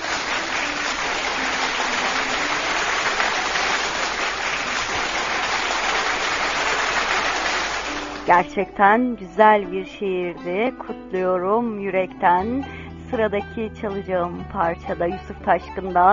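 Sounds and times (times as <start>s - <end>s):
audience applause after a poetry reading: 0.0s - 8.3s
speech: 8.3s - 16.1s.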